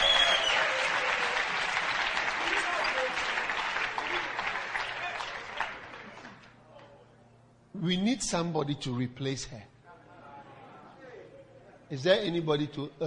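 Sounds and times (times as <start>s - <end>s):
audience clapping: 0.0s - 6.6s
speech: 7.8s - 9.7s, 11.9s - 13.0s.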